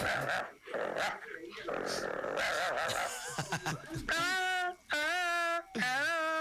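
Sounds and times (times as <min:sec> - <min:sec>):
dog growling and snarling: 0:00.0 - 0:03.2
laughter: 0:02.8 - 0:06.3.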